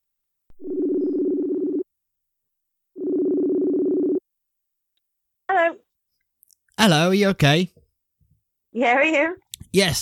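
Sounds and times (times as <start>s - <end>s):
phone ringback tone: 0.6s - 1.9s, 3.0s - 4.2s
speech: 6.8s - 7.8s, 8.7s - 10.0s.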